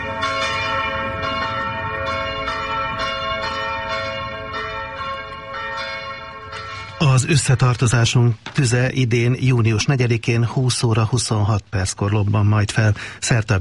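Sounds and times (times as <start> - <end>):
church test bell ringing: 0.0 - 8.1
speech: 7.2 - 13.5.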